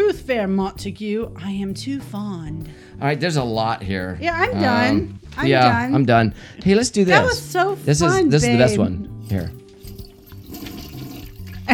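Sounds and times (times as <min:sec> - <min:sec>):
speech: 0:00.3 - 0:09.6
toilet flushing: 0:10.3 - 0:11.7.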